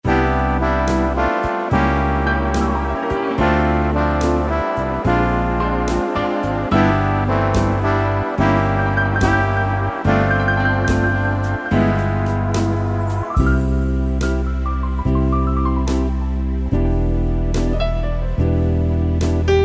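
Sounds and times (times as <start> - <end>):
easy listening swing and jazz keyboard style: 0.0 - 19.6.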